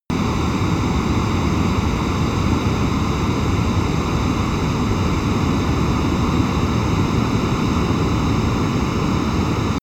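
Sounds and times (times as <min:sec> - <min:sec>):
Boeing 737 plane turbine idling close: 0:00.1 - 0:09.8.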